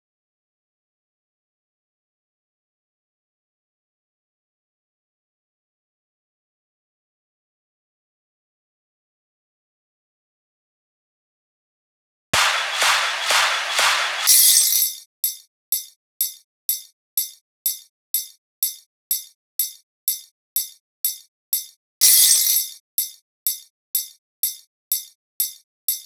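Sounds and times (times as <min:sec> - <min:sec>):
drums and percussion: 0:12.4 - 0:14.9.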